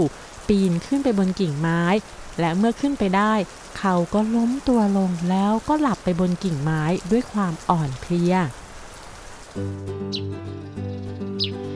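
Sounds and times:
speech: 0:00.0 - 0:08.6, 0:09.6 - 0:10.6
steady rain-like hiss: 0:00.0 - 0:09.8
high bird chirps in the morning: 0:10.1 - 0:11.7.

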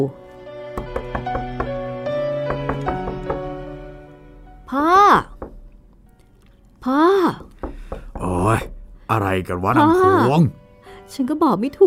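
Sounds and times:
speech: 0:00.0 - 0:00.2, 0:04.7 - 0:05.3, 0:06.8 - 0:07.5, 0:08.2 - 0:11.8
fists pounding on a door: 0:00.8 - 0:03.8, 0:05.2 - 0:05.8, 0:07.4 - 0:09.1.

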